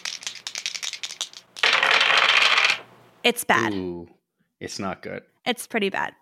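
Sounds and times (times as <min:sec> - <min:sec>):
three dice rattling in a shake: 0:00.0 - 0:02.9
speech: 0:03.2 - 0:06.2.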